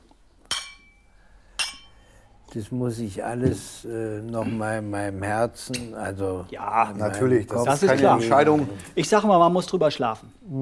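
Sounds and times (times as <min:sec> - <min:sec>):
glasses clinking in a toast: 0:00.4 - 0:02.0
speech: 0:02.5 - 0:10.6.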